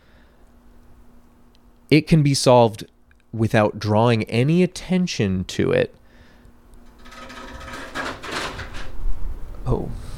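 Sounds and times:
air conditioner making a harsh grinding mechanical noise: 0:00.0 - 0:09.7
speech: 0:01.9 - 0:06.0.

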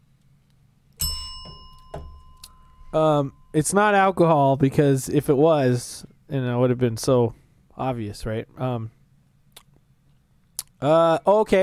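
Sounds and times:
faint knocks: 0:01.0 - 0:03.7
bell struck once: 0:01.0 - 0:04.3
speech: 0:02.9 - 0:09.0, 0:10.8 - 0:11.6.

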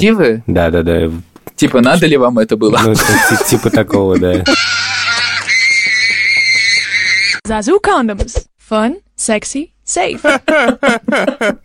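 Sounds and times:
speech: 0:00.0 - 0:05.0, 0:07.4 - 0:11.6
laughter: 0:02.7 - 0:06.0, 0:10.2 - 0:11.6
child screaming in a high-pitched tantrum: 0:04.5 - 0:07.4.

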